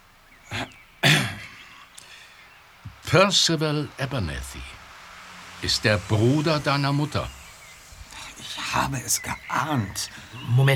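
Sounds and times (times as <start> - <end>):
man clearing his throat heavily: 0.5 - 1.8
speech: 3.1 - 4.8, 5.6 - 7.4, 8.5 - 10.7.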